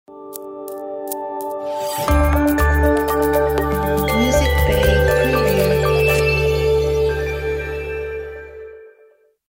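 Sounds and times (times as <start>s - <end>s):
clean corporate logo jingle: 2.1s - 8.3s.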